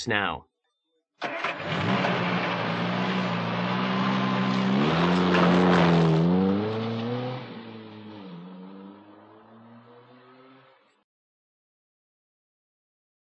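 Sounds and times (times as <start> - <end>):
speech: 0.0 - 0.5
car engine starting: 1.2 - 10.9.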